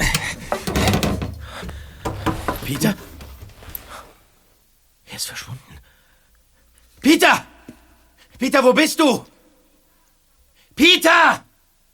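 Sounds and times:
wooden cabinet door knocking while opened: 0.0s - 4.0s
wooden cabinet door creaking: 0.0s - 4.4s
speech: 2.7s - 3.1s, 8.4s - 9.3s, 10.8s - 11.4s.

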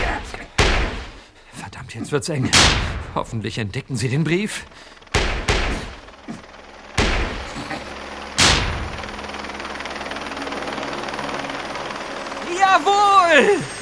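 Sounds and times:
sharp loud bangs: 0.0s - 1.4s, 2.5s - 3.6s, 5.0s - 9.6s
helicopter landing outside with droning rotor roar: 0.0s - 13.8s
speech: 1.9s - 5.0s.

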